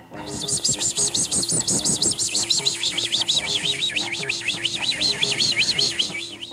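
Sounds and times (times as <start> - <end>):
bird chirping in high warbling trills: 0.0 - 6.5
murmuring sounds: 2.0 - 6.5.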